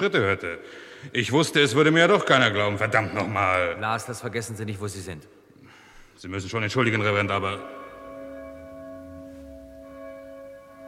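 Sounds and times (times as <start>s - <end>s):
speech: 0.0s - 5.4s, 6.2s - 7.8s
church bells ringing: 6.8s - 10.8s.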